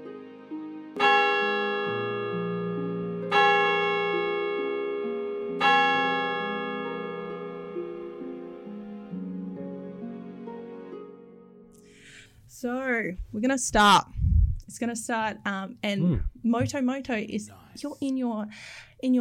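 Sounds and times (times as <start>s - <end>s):
tower bell tolling: 1.0s - 8.7s
speech: 12.6s - 19.2s.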